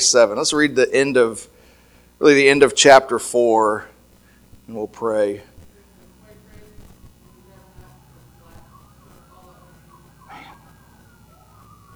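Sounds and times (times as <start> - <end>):
speech: 0.0 - 1.6, 2.2 - 3.9, 4.7 - 5.5
faint indistinct voices: 3.6 - 11.9
emergency vehicle siren wailing outside: 7.2 - 11.9.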